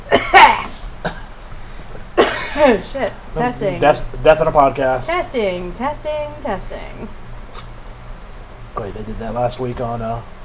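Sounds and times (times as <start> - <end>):
person coughing harshly: 0.0 - 1.4, 2.2 - 2.8
speech: 2.6 - 7.2, 8.8 - 10.4.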